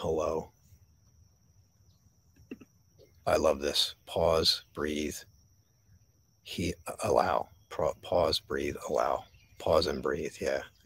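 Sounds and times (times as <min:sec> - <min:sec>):
speech: 0:00.0 - 0:00.6, 0:03.2 - 0:05.3, 0:06.4 - 0:10.8
crickets chirping: 0:00.0 - 0:10.8.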